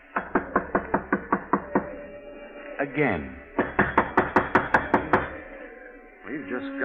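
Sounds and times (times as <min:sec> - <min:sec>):
knuckles knocking on a wooden door: 0:00.2 - 0:01.9, 0:03.6 - 0:05.4
speech: 0:02.8 - 0:03.4, 0:06.3 - 0:06.8.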